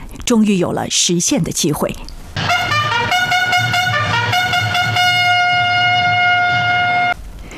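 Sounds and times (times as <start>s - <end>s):
speech: 0.3s - 2.2s
bugle call as train departs station: 2.4s - 7.2s
low rumbling background: 2.4s - 7.4s.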